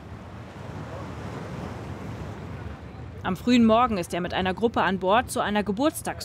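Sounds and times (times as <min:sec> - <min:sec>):
steady wind roaring against the microphone: 0:00.0 - 0:03.9
sea waves washing and churning: 0:00.0 - 0:04.5
speech: 0:03.2 - 0:06.2.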